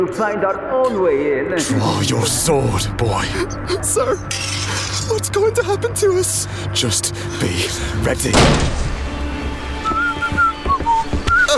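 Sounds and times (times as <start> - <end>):
speech: 0.0 - 8.9
steady low rumble: 0.9 - 9.8
person whistling short high clear notes: 9.8 - 11.5.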